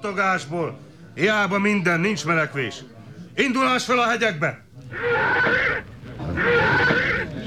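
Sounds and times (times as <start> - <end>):
speech: 0.0 - 7.0
spooked horse whinnying: 4.9 - 7.4.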